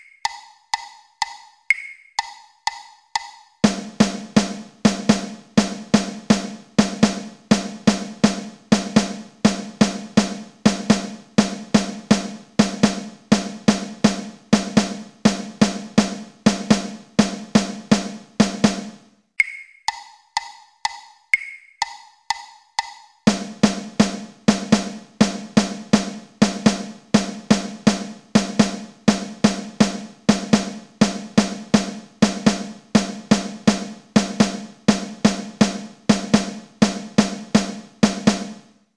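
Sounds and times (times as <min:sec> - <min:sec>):
party dance mix rhythm at 124 bpm: 0:00.3 - 0:19.1, 0:21.8 - 0:38.7.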